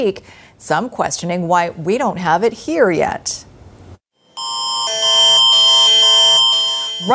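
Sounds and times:
speech: 0.0 - 3.5
emergency alert system test tone with stacked pitches: 4.4 - 7.1.

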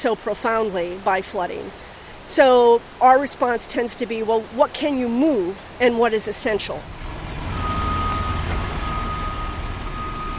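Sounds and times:
speech: 0.0 - 7.0
heavy dump truck engine rumbling while driving through a river: 6.7 - 10.3
thin constant high-pitched beep: 7.5 - 10.3.

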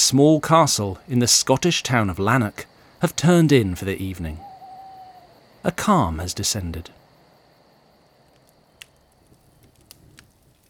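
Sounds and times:
low steady hiss: 0.0 - 10.6
speech: 0.1 - 4.5, 5.6 - 7.0
dying fire crackling in castle kitchens: 7.8 - 10.6.

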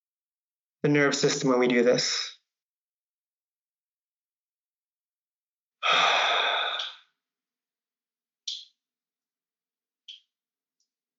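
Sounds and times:
speech: 0.8 - 2.3
slow deep breath exhaled through the mouth: 5.8 - 7.0.

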